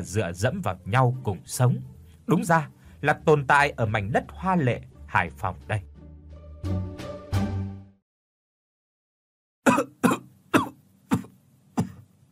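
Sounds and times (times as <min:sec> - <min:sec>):
speech: 0:00.0 - 0:05.9, 0:06.6 - 0:06.9
old man's deep hacking cough: 0:09.6 - 0:12.1.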